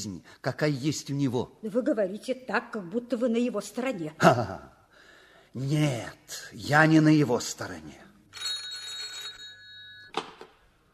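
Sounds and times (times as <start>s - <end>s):
speech: 0.0s - 4.8s, 5.5s - 8.5s
telephone ringing with a metallic trill: 8.3s - 10.4s.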